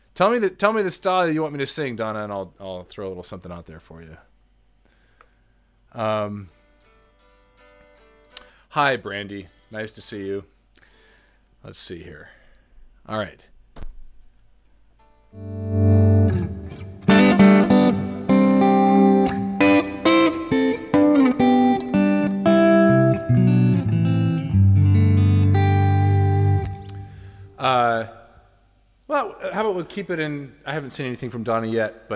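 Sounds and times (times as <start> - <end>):
speech: 0.2 - 4.3, 5.9 - 6.6, 8.7 - 10.5, 11.6 - 12.4, 13.1 - 13.5, 15.3 - 15.8, 29.6 - 32.1
heavily processed instrument notes drenched in thick reverb: 15.4 - 27.6.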